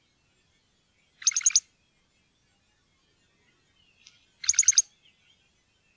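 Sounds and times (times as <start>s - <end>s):
great grey shrike rattling call: 1.2s - 1.6s, 4.4s - 4.8s.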